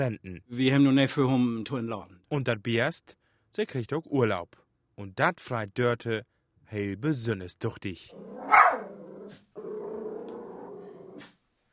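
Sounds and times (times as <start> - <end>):
speech: 0.0 - 8.6
dog growling: 8.1 - 11.4
dog barking: 8.4 - 9.0.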